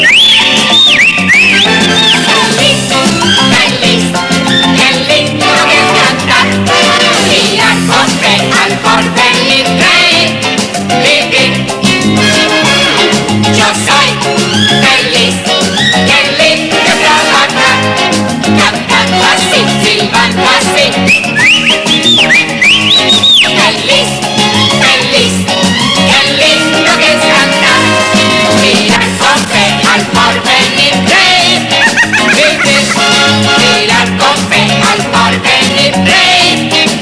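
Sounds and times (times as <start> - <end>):
whistled melody: 0.0 - 2.6, 21.0 - 23.6
loud busy musical accompaniment: 0.0 - 37.0
laughter: 31.6 - 33.4.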